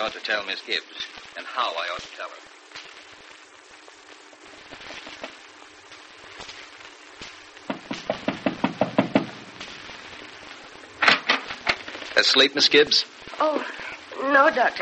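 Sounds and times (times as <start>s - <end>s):
speech: 0.0s - 2.6s, 12.2s - 14.8s
sharp knocks on a door: 7.7s - 9.4s.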